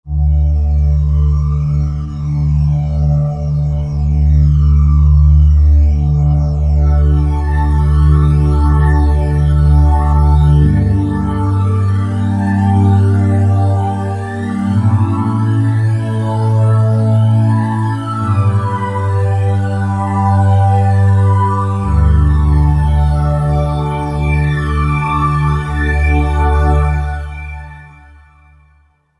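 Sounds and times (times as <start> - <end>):
jet synthesizer pad: 0.1 - 28.8.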